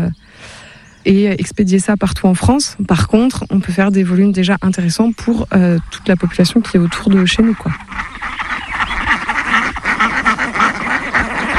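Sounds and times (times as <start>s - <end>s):
speech: 1.0s - 8.0s
flock of Indian Runner ducks quacking: 4.7s - 11.5s.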